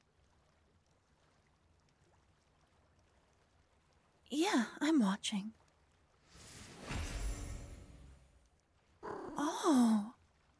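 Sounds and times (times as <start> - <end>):
speech: 4.3 - 5.6, 9.6 - 10.1
cat meowing: 9.0 - 9.6
cat purring: 9.0 - 9.7.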